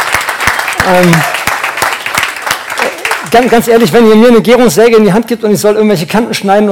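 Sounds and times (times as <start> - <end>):
audience applause: 0.0 - 3.9
speech: 0.8 - 1.3, 3.3 - 6.7.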